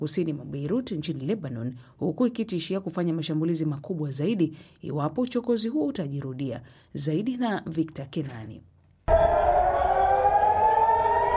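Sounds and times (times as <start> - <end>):
speech: 0.0 - 9.3
air raid warning sirens in Israel wailing: 9.1 - 11.3.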